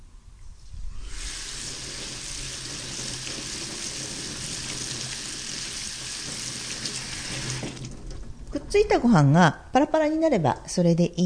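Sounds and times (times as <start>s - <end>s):
running tap water pouring over cooked rice in a colander: 1.1s - 8.2s
speech: 8.7s - 11.2s.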